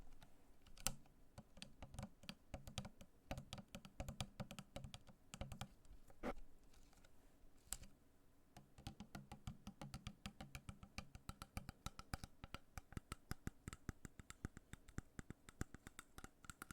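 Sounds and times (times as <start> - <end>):
plastic tapping on a water bottle: 0.9 - 5.7, 8.6 - 16.7.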